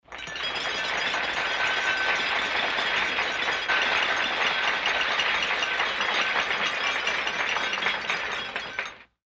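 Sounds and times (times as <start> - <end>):
applause at a party: 0.0 - 9.2.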